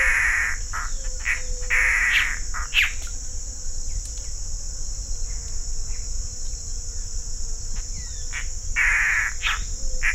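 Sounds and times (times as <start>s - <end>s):
Mato Grosso antbird calling near Barão de Melgaço, Mato Grosso, Brazil: 0.0s - 3.2s, 7.8s - 10.1s
steady insect drone: 0.0s - 10.1s.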